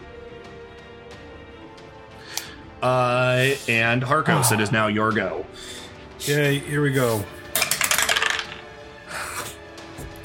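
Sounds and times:
speech: 2.8 - 7.4
die in a tabletop game clattering across a hard tabletop: 7.5 - 8.7.

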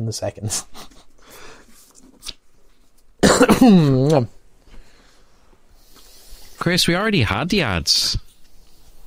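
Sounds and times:
speech: 0.0 - 1.0, 3.6 - 4.4, 6.6 - 8.2
faint noise: 0.0 - 9.0
loud cough trailing into a raspy rumble: 3.2 - 4.0.

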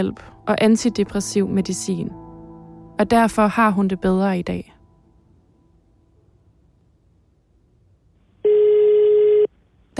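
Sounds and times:
speech: 0.0 - 2.2, 3.0 - 4.8
telephone ringing tone of a call to a prison: 8.4 - 9.5.

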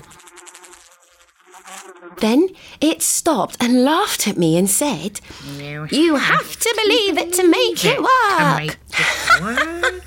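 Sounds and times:
fly-like buzzing: 0.0 - 2.4
speech: 2.0 - 10.0
laughter: 7.8 - 10.0.

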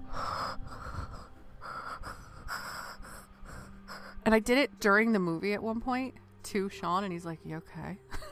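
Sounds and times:
voice imitating a movie killer's heavy breathing: 0.0 - 4.3
speech: 4.3 - 8.1.

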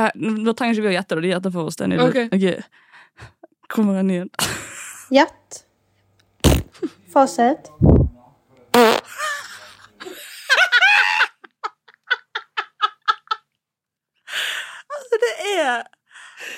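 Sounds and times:
speech: 0.0 - 5.6, 6.8 - 8.0, 15.7 - 16.5
bursts of laughter: 4.4 - 5.1, 9.0 - 13.6
loud low fart: 6.4 - 6.8, 8.7 - 9.1.

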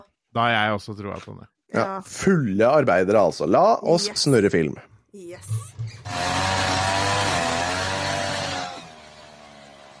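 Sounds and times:
speech: 0.4 - 7.3
string trimmer whining: 6.0 - 9.9.

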